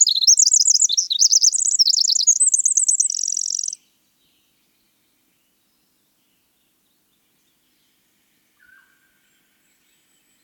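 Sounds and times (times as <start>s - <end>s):
winter wren singing: 0.0s - 3.8s.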